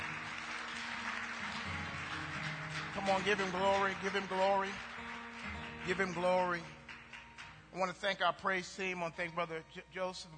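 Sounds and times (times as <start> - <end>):
church congregation applauding during a morning service: 0.0 - 8.9
speech: 3.0 - 4.9, 5.8 - 6.8, 7.7 - 10.3.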